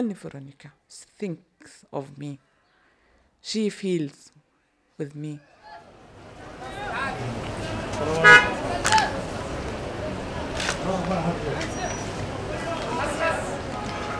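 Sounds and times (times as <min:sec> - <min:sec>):
speech: 0:00.0 - 0:02.5, 0:03.4 - 0:04.4, 0:05.0 - 0:05.8, 0:08.0 - 0:08.5, 0:10.8 - 0:12.1
crowd murmur: 0:05.6 - 0:14.1
busy street traffic engines roaring: 0:05.8 - 0:14.1
car horns honking: 0:06.7 - 0:09.1.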